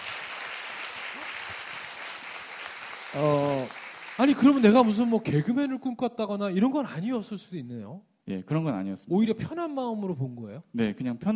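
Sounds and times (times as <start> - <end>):
applause from a small group: 0.0 - 5.6
speech: 3.1 - 11.3.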